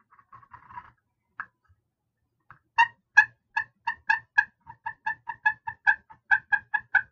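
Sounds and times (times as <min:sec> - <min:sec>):
raspy scratches of wooden dowel on slate turkey call: 0:00.0 - 0:01.0
slate turkey call rubbed with wooden dowel clucking: 0:02.8 - 0:07.0.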